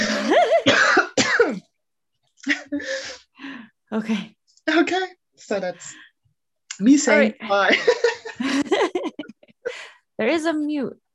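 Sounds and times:
person coughing and clearing their throat: 0:00.0 - 0:01.7
speech: 0:04.0 - 0:06.1, 0:06.8 - 0:09.2, 0:10.2 - 0:11.0
laughter: 0:07.5 - 0:09.7.

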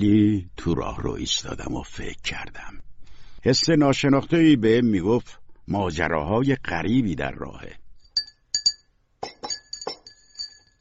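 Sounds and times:
speech: 0:00.0 - 0:07.8
tea cups clinking against each other in a room at home: 0:08.1 - 0:10.7.

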